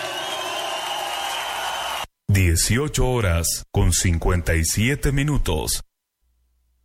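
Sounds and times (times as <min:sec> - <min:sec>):
audience applauding loudly: 0:00.0 - 0:02.1
speech: 0:02.6 - 0:05.9.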